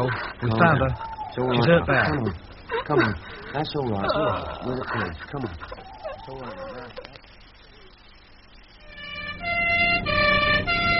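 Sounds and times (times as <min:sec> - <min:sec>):
speech: 0:00.0 - 0:06.7
ambulance siren wailing: 0:08.9 - 0:10.9.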